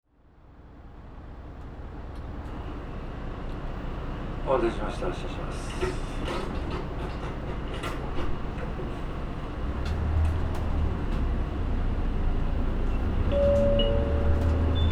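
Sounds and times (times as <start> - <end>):
low road and cabin rumble inside a moving electric bus: 1.3 - 14.9
speech: 4.5 - 8.4.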